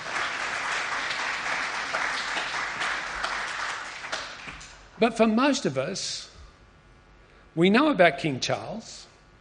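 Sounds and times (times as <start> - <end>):
audience applause: 0.0 - 4.8
speech: 5.0 - 6.3, 7.6 - 9.1.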